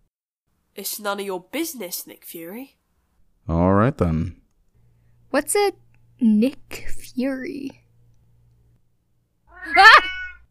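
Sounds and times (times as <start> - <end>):
speech: 0.8 - 2.8, 3.4 - 4.4, 5.3 - 7.8, 9.6 - 10.1
angry cat yowling: 9.5 - 10.4.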